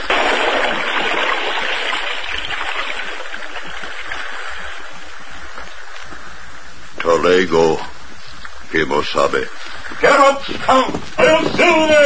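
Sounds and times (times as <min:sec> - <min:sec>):
sword splashing into swift stream water: 0:00.0 - 0:05.0
swift stream water rushing and gurgling: 0:00.0 - 0:06.0
speech: 0:07.3 - 0:07.9, 0:08.7 - 0:12.0.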